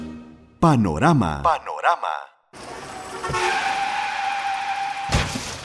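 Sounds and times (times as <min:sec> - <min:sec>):
speech: 0:00.7 - 0:03.6
car tires screeching in a skid: 0:02.6 - 0:05.2
car crash: 0:02.6 - 0:05.6.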